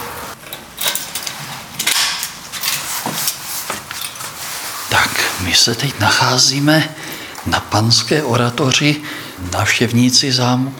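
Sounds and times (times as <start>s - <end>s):
metal grille gate in a castle being unlocked, clanking and rattling: 0.4s - 2.9s
speech: 5.4s - 10.7s.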